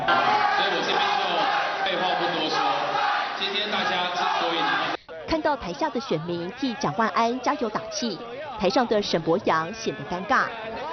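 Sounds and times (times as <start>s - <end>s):
crowd cheering at political event: 0.0s - 10.9s
speech: 5.5s - 10.9s.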